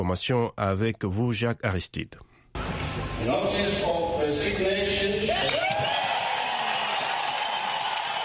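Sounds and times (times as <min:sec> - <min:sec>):
speech: 0:00.0 - 0:02.3, 0:03.2 - 0:05.1
crowd applauding in a parliament chamber: 0:05.3 - 0:08.2.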